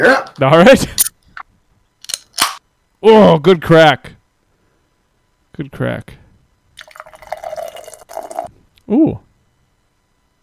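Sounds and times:
speech: 0:00.0 - 0:01.1, 0:03.0 - 0:04.2, 0:05.6 - 0:06.2, 0:08.9 - 0:09.2
IPA from a can poured into a glass: 0:06.8 - 0:08.5.

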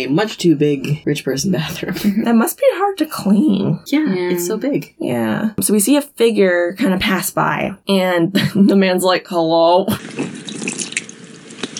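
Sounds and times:
speech: 0:00.0 - 0:10.3
faucet running into a sink: 0:10.0 - 0:11.7
bright drip-like water plinks: 0:10.2 - 0:11.7.

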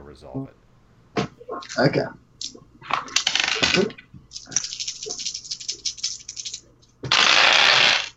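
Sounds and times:
speech: 0:00.2 - 0:00.6, 0:01.4 - 0:02.2, 0:02.9 - 0:04.4
dice rattling across a table during a tabletop role-playing game: 0:02.4 - 0:08.1.

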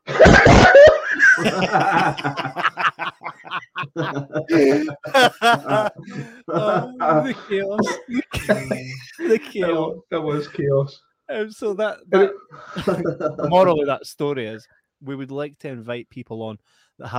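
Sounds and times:
stifled giggling and snickering: 0:00.0 - 0:10.6, 0:12.2 - 0:13.8
person imitating forced coughs to hide laughter: 0:00.1 - 0:02.6, 0:04.5 - 0:09.5
speech: 0:01.4 - 0:02.7, 0:04.0 - 0:17.1.

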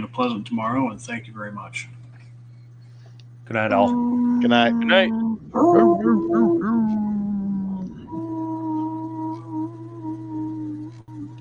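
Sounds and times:
speech: 0:00.0 - 0:02.0, 0:03.5 - 0:07.1
person imitating dog howling and yelping: 0:03.6 - 0:11.4.

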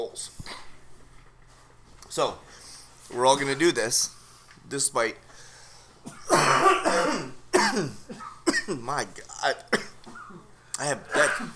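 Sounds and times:
speech: 0:00.0 - 0:00.6, 0:02.1 - 0:05.2, 0:06.8 - 0:08.0, 0:08.7 - 0:09.8, 0:10.8 - 0:11.5
person coughing and raspy throat clearing: 0:06.0 - 0:11.5.

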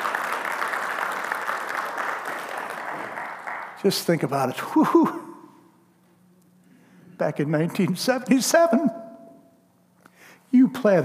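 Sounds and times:
large group applauding in a church: 0:00.0 - 0:04.2
speech: 0:03.8 - 0:05.2, 0:07.2 - 0:09.0, 0:10.5 - 0:11.0.

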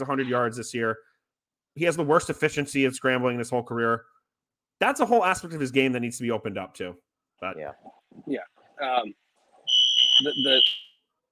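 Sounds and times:
speech: 0:00.0 - 0:01.1, 0:01.8 - 0:04.2, 0:04.8 - 0:09.2, 0:10.2 - 0:10.9
shrill steady electronic alarm beep: 0:09.7 - 0:10.9.

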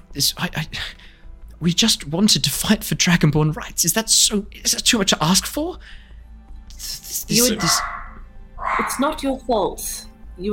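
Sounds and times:
speech: 0:00.2 - 0:06.1, 0:06.8 - 0:07.9, 0:08.8 - 0:10.5
dog barking: 0:07.4 - 0:09.2.

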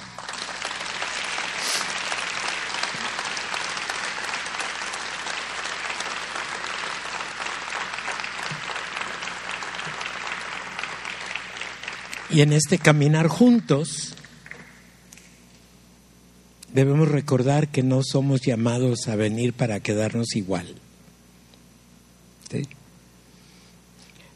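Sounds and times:
audience applauding: 0:00.0 - 0:14.9
speech: 0:12.3 - 0:14.1, 0:16.8 - 0:20.9.

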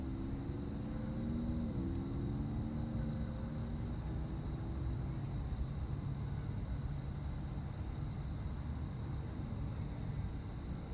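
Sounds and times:
vehicle engine whine passing: 0:00.0 - 0:07.3
cars rumbling: 0:00.0 - 0:08.2
high cricket trill: 0:00.0 - 0:10.9
faint high ticks: 0:01.6 - 0:02.1.

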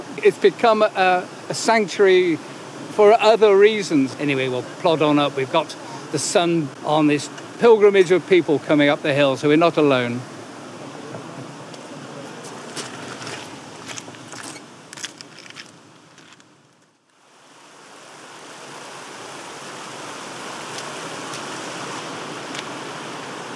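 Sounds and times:
mountain stream rushing at a confluence: 0:00.0 - 0:23.5
speech: 0:00.2 - 0:10.3
clicks and crackles: 0:12.8 - 0:17.2.

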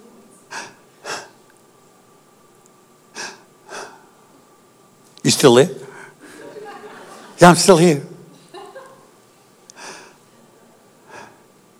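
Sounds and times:
faint steady hum and hiss on a phone line: 0:00.0 - 0:11.7
quiet breathing over a phone line: 0:00.4 - 0:01.5, 0:03.1 - 0:04.4, 0:05.8 - 0:06.6, 0:09.7 - 0:11.7
speech: 0:05.2 - 0:05.8, 0:07.4 - 0:08.1
laughter: 0:06.2 - 0:09.3.

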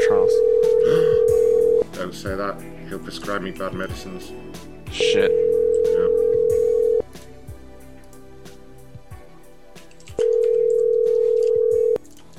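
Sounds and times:
telephone call-progress tones on a rejected call: 0:00.4 - 0:01.8, 0:05.0 - 0:07.0, 0:10.2 - 0:12.0
speech: 0:02.2 - 0:05.5.

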